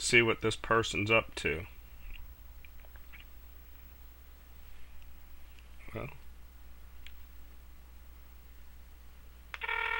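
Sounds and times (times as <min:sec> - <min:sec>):
low steady hum: 0:00.0 - 0:09.9
speech: 0:00.1 - 0:01.8, 0:06.0 - 0:06.2
electronic telephone ring heard through the line on an outgoing call: 0:09.6 - 0:09.9.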